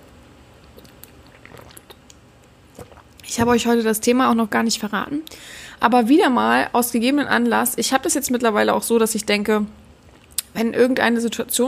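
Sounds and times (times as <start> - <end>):
wet mouth clicks: 0.6 - 3.3, 10.0 - 10.6
person gulping still water from a bottle: 0.6 - 3.7, 10.0 - 10.5
speech: 3.3 - 9.8, 10.6 - 11.6.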